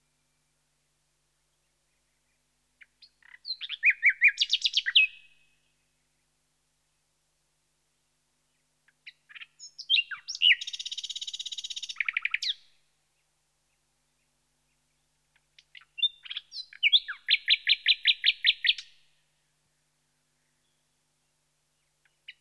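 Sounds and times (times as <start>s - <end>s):
common nightingale singing: 1.9s - 5.4s, 8.9s - 12.7s, 13.7s - 19.0s, 21.8s - 22.3s.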